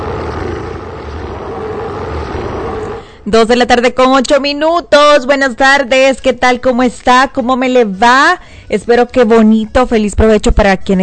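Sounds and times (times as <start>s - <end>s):
loud sustained rumbling roar: 0.0s - 3.2s
speech: 3.3s - 11.0s.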